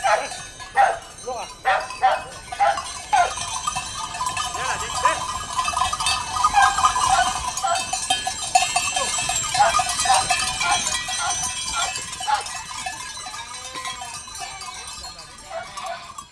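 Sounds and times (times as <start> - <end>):
female sheepdog barking while herding ewes into a sheepfold: 0.0 - 3.4, 6.5 - 7.9, 9.5 - 12.6, 15.5 - 16.0
bells clanking: 0.0 - 16.2.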